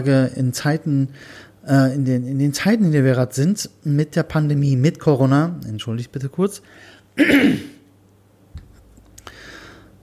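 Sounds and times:
speech: 0:00.0 - 0:07.8
faint throat-clearing rasp: 0:07.2 - 0:07.8
single harsh cough: 0:07.2 - 0:07.8.

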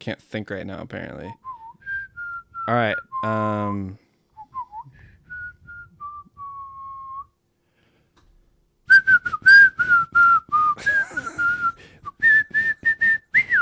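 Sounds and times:
speech: 0:00.0 - 0:01.5, 0:02.6 - 0:04.0
person whistling a light wandering tune like game show thinking music: 0:01.4 - 0:03.4, 0:04.4 - 0:07.3, 0:08.9 - 0:13.5.

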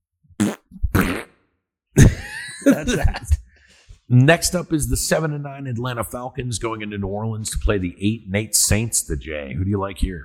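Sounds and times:
fart sound effect: 0:00.4 - 0:01.4
laughter: 0:02.0 - 0:03.4
speech: 0:02.0 - 0:03.4, 0:04.1 - 0:10.2.

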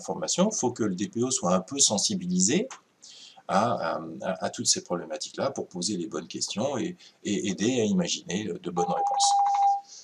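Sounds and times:
speech: 0:00.0 - 0:09.5
telephone ringing with a warbling electronic tone: 0:08.8 - 0:09.9.

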